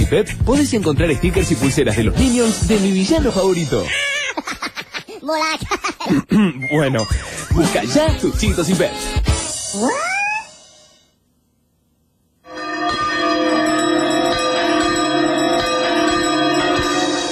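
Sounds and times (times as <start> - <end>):
speech: 0.1 - 4.6, 5.3 - 10.1
two church bells clanging together: 12.5 - 17.3.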